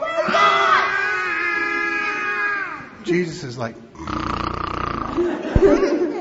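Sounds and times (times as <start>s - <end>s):
group of people yelling together: 0.0s - 3.0s
speech: 3.1s - 4.3s, 5.2s - 6.0s
laughter: 5.1s - 6.1s.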